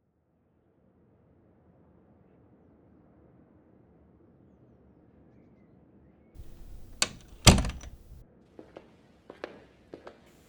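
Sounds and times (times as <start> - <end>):
light knocks: 6.4 - 8.2
side door opening and shutting: 6.4 - 8.2.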